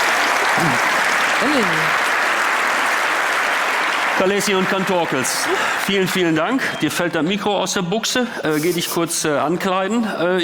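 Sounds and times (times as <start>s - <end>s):
audience applause at the close of a talk at a community conference: 0.0s - 7.1s
speech: 0.6s - 2.0s, 4.2s - 10.4s.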